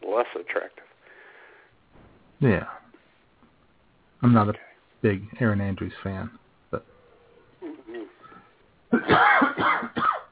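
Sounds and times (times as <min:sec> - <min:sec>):
speech: 0:00.2 - 0:01.0, 0:02.4 - 0:02.8, 0:04.2 - 0:06.9
person coughing: 0:08.9 - 0:10.3.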